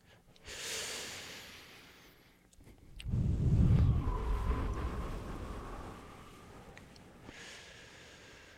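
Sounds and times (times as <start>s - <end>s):
gentle slow breathing: 0.0s - 8.5s.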